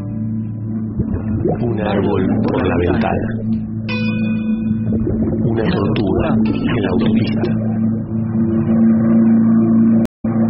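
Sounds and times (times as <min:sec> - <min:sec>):
car engine droning at a steady pitch: 0:00.0 - 0:10.4
speech: 0:01.0 - 0:03.7, 0:05.6 - 0:07.7.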